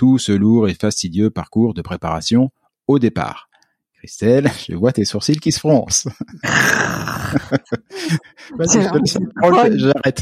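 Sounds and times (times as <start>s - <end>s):
speech: 0.0s - 10.2s
laughter: 5.9s - 10.2s
person imitating a growl: 6.4s - 7.6s.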